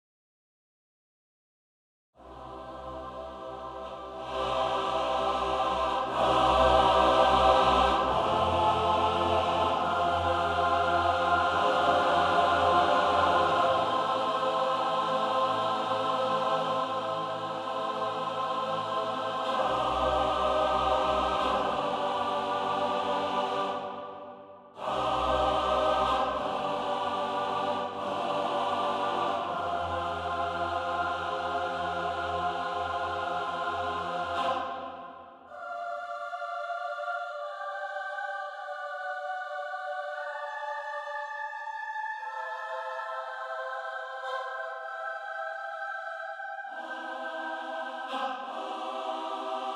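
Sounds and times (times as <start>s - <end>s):
choir singing: 2.2s - 49.7s.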